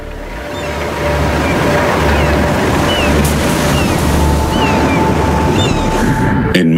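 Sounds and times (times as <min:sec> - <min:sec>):
storm waves crashing against the coast: 0:00.0 - 0:06.6.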